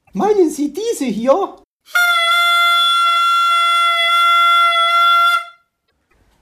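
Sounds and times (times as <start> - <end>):
speech: 0.2 - 2.0
toy horn honking: 1.9 - 5.6.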